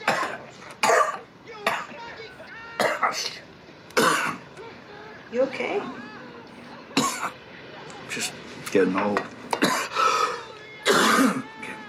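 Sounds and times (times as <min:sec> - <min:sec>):
harsh raspy coughing: 0:00.0 - 0:02.0, 0:02.8 - 0:03.2, 0:04.0 - 0:04.4, 0:07.0 - 0:07.4, 0:09.6 - 0:11.5
speech: 0:05.3 - 0:06.0, 0:08.2 - 0:09.4.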